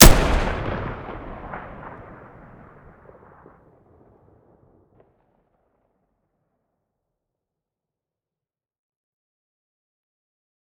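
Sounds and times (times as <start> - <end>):
RPK machine gun shooting: 0.0 - 1.7.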